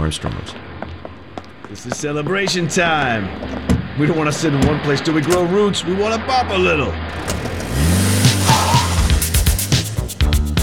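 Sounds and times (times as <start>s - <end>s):
speech: 0.0s - 0.8s, 1.7s - 8.0s
brief tire squeal: 2.8s - 9.5s
car engine revving and pulling away: 3.0s - 10.5s
rough mechanical bursts: 6.0s - 9.8s.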